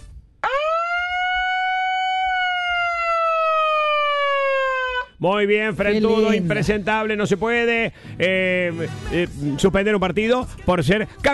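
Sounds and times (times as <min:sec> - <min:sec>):
siren wailing: 0:00.4 - 0:05.2
speech: 0:05.2 - 0:11.3.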